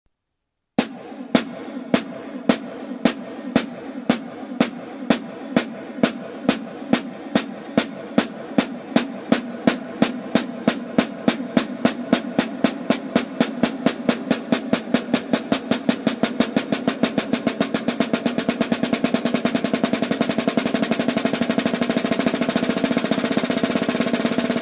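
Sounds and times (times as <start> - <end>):
drum double stroke roll: 0.8 - 24.6.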